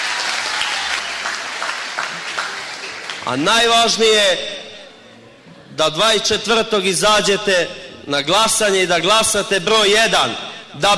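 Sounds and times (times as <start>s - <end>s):
crowd applauding at a local election campaign rally: 0.0s - 3.4s
speech: 3.2s - 4.6s, 5.8s - 10.9s.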